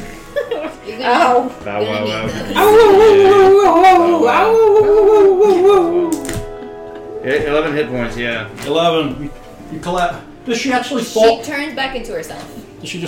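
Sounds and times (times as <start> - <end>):
speech: 0.6 - 6.1, 7.2 - 13.0
person imitating a wolf howl during a tabletop role-playing game: 2.6 - 6.3.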